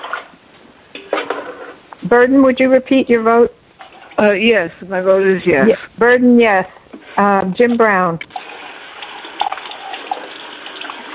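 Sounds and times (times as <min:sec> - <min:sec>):
speech: 0:02.0 - 0:03.6, 0:04.2 - 0:08.3
water running from a tap: 0:08.3 - 0:11.1.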